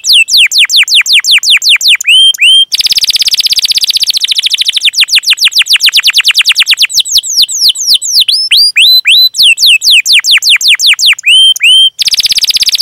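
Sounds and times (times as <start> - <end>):
canary singing lure song with buzzy trills: 0.0 - 12.8.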